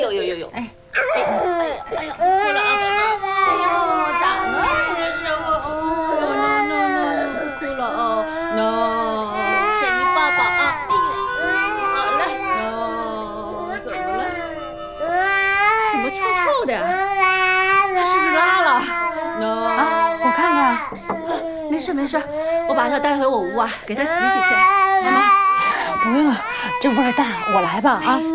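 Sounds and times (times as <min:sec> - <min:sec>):
speech: 0:00.0 - 0:01.0, 0:22.0 - 0:28.3
baby crying with high-pitched wails: 0:00.9 - 0:28.3
baby babbling: 0:01.0 - 0:22.7.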